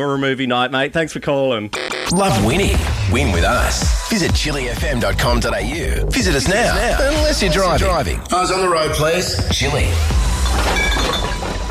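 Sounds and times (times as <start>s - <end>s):
speech: 0.0s - 11.2s
coins clinking together: 10.4s - 11.6s.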